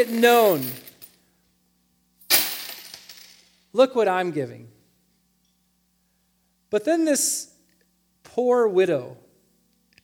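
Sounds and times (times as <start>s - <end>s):
speech: 0.0s - 0.9s, 3.7s - 4.8s, 6.7s - 7.5s, 8.2s - 9.2s
coins poured out of a coin jug: 0.0s - 1.1s, 2.3s - 3.5s.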